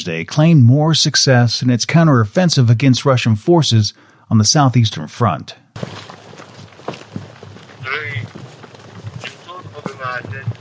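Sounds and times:
speech: 0.0 - 6.2
footsteps of territorial defense brigade soldiers running into position: 5.8 - 10.5
voices calling out: 5.8 - 10.5
wind noise: 5.8 - 10.5.

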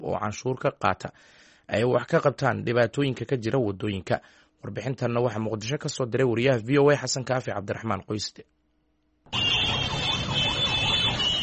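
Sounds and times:
speech: 0.0 - 8.6
horns of various vehicles in a traffic jam on a main road in Mogadishu: 9.3 - 11.4.

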